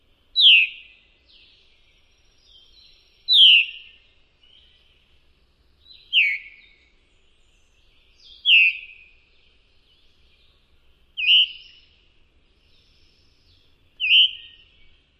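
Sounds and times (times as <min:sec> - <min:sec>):
Veery calling: 0:03.3 - 0:03.9, 0:06.1 - 0:06.6, 0:08.4 - 0:09.0, 0:11.2 - 0:11.9, 0:14.0 - 0:15.0.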